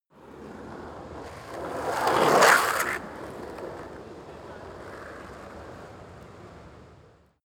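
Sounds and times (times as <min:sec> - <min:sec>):
skateboard single drive turn: 0:00.2 - 0:07.3.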